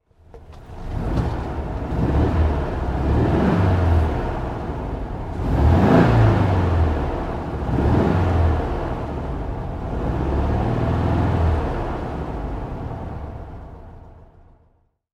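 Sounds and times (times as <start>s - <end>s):
VW Beetle 1300 car interior sound: 0.1s - 14.5s.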